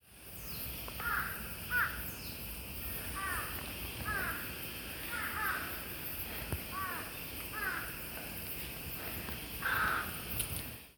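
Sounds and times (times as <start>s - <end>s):
steady high background hiss: 0.0s - 10.9s
Ryukyu large-billed crow giving harsh arched caws: 1.0s - 2.0s, 3.2s - 3.5s, 4.1s - 4.4s, 5.1s - 5.8s, 6.7s - 8.0s, 9.6s - 10.2s.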